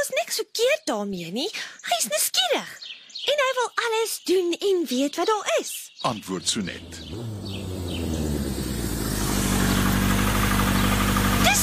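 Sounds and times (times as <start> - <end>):
speech: 0.0 - 7.3
motorcycle engine droning: 6.2 - 11.6.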